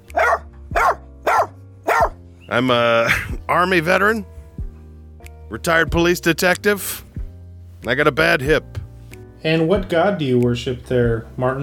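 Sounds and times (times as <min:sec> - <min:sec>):
person imitating a dog barking: 0:00.1 - 0:02.2
speech: 0:02.5 - 0:04.3, 0:05.5 - 0:07.0, 0:07.8 - 0:08.8, 0:09.4 - 0:11.6.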